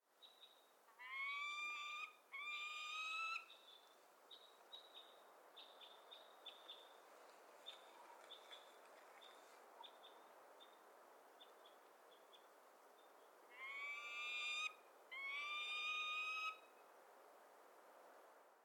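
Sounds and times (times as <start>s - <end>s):
Peregrine Falcon Falco peregrinus calling: 1.0s - 3.6s, 13.5s - 16.7s.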